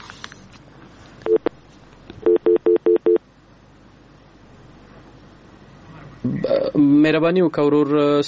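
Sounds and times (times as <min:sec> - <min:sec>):
telephone ring tones as a caller's line connects: 0:01.2 - 0:01.5, 0:02.2 - 0:03.2
speech: 0:06.2 - 0:08.2.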